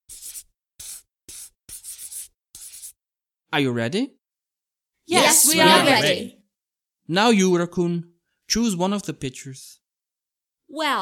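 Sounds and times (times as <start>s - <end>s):
red pencil scribbling on paper: 0.0s - 3.0s
speech: 3.5s - 4.2s, 5.1s - 6.4s, 7.1s - 9.8s, 10.7s - 10.9s.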